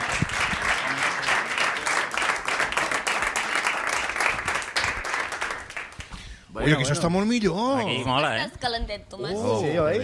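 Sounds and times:
crowd applauding: 0.0 - 6.1
speech: 6.6 - 10.0.

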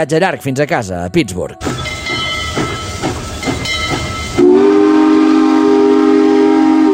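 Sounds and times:
speech: 0.0 - 1.8
train wheels clattering on tracks: 1.6 - 5.4
loud sustained train whistle: 4.3 - 6.9.

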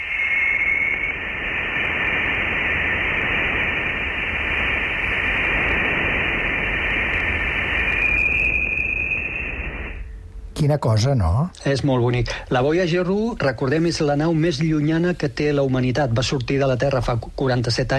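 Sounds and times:
thin high whistling tone in interstellar particle interference: 0.0 - 5.0, 6.6 - 10.3
spacecraft-recorded interstellar particle interference static: 0.0 - 17.9
speech: 10.6 - 17.9.

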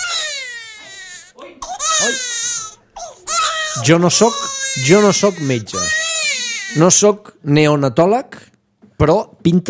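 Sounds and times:
extremely small newborn baby crying: 0.0 - 7.1
speech: 2.0 - 2.3, 3.8 - 6.0, 6.8 - 8.4, 9.0 - 9.6.

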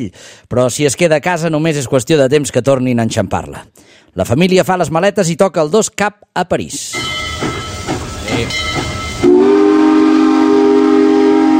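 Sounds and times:
speech: 0.0 - 7.6, 8.4 - 8.9
steam locomotive chuffing: 6.9 - 11.5
loud sustained steam train whistle: 8.4 - 11.5.

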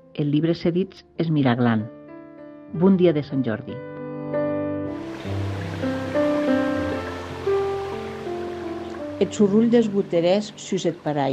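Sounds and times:
speech: 0.2 - 2.0, 2.7 - 3.9, 9.2 - 11.3
sustained melodic music tones: 3.8 - 11.3
small stream flowing at the foot of a street: 4.9 - 11.3.

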